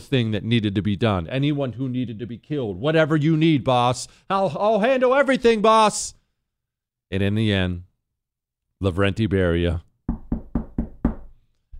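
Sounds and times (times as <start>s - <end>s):
speech: 0.0s - 6.2s, 7.1s - 7.9s, 8.8s - 10.2s
firm knocking on a door: 10.1s - 11.7s.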